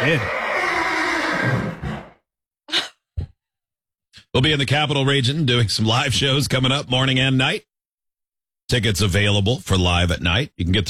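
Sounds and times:
speech: 0.0 - 0.4, 4.4 - 7.7, 8.7 - 10.8
horse whinnying: 0.0 - 2.2.

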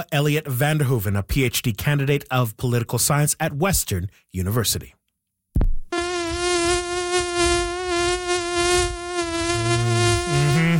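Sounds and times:
speech: 0.0 - 5.0
high-pitched mosquito whine: 6.0 - 10.7.

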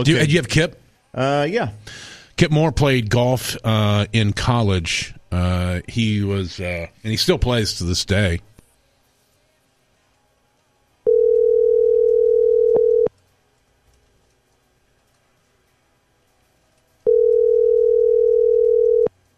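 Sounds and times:
speech: 0.0 - 8.5
ringback tone on an outgoing phone call: 11.1 - 13.1, 17.0 - 19.1.

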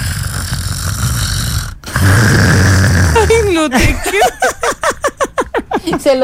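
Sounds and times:
person imitating snoring: 0.0 - 3.6
laughter: 3.2 - 6.2
speech: 3.6 - 4.6, 6.0 - 6.2.

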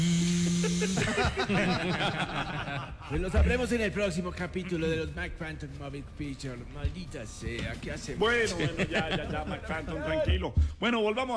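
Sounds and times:
voice imitating a blender: 0.0 - 1.4
laughter: 0.6 - 5.2, 8.2 - 10.3
speech: 0.8 - 11.3.

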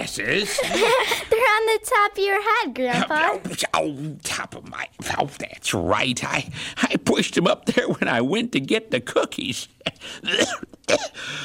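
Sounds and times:
speech: 0.0 - 11.4
laughter: 0.3 - 1.6
rough raspy coughs from a lingering cough after flu: 9.8 - 11.4.

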